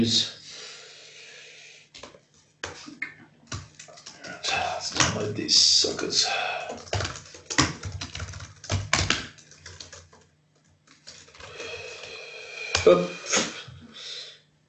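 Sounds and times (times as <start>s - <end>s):
speech: 0.0s - 0.4s, 5.2s - 7.1s, 12.8s - 13.4s
faint hum: 0.0s - 14.6s
typing on a computer keyboard: 3.5s - 4.3s, 6.7s - 11.7s.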